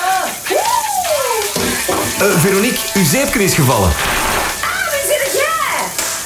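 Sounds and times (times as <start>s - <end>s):
water pouring from a running shower: 0.0s - 6.2s
speech: 2.2s - 4.4s.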